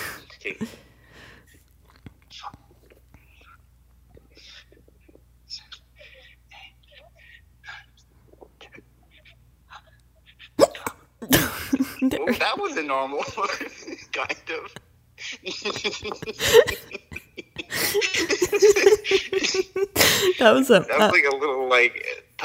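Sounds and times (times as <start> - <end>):
quiet breathy sounds: 0.0 - 1.6, 20.0 - 20.4
speech: 0.4 - 0.9, 12.0 - 14.8, 15.4 - 17.0, 18.0 - 22.4
soft whispering: 1.9 - 10.0
hiccups: 10.6 - 11.4
laughter: 11.4 - 20.4.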